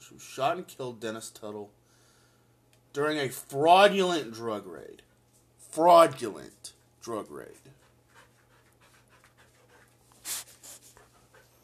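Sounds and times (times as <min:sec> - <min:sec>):
speech: 0:00.1 - 0:01.8, 0:02.9 - 0:05.1, 0:05.7 - 0:07.8
dog panting: 0:07.7 - 0:11.6.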